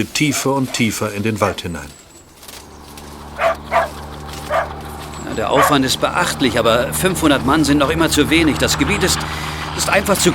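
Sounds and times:
speech: 0:00.0 - 0:02.0, 0:05.4 - 0:10.3
dog barking while following a scent: 0:00.0 - 0:02.3, 0:03.2 - 0:06.5.

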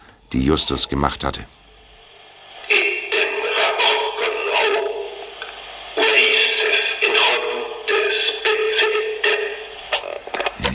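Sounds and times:
heavy static hiss from an old tape recording played back: 0:00.0 - 0:10.7
speech: 0:00.3 - 0:01.6
garbled indistinct voice-like bursts: 0:10.5 - 0:10.7.

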